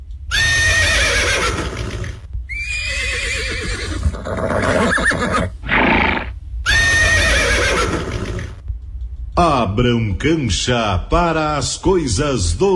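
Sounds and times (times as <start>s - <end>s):
faint hoof sounds: 0.0s - 10.4s
low rumbling background: 0.0s - 12.7s
herd of young horses neighing and whinnying: 0.3s - 8.6s
speech: 9.4s - 12.7s.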